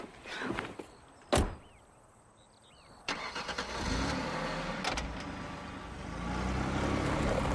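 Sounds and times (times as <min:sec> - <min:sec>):
car engine cranking and idling: 0:03.1 - 0:07.5.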